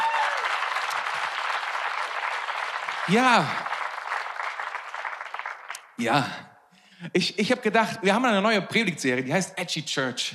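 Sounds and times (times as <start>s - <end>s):
audience applauding: 0.0s - 6.0s
speech: 3.1s - 3.7s, 6.0s - 10.3s.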